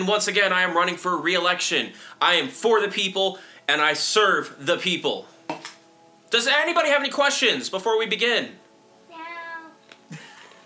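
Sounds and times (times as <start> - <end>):
speech: 0.0 - 5.7, 6.3 - 8.6
person imitating a cat meowing: 9.1 - 9.8.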